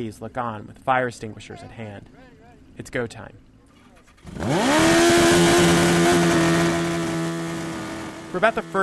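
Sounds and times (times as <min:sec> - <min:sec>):
speech: 0:00.0 - 0:03.5, 0:04.2 - 0:06.0, 0:08.3 - 0:08.8
old Yamaha motorcycle engine sputtering, revving and idling on a grassy area: 0:03.4 - 0:08.8.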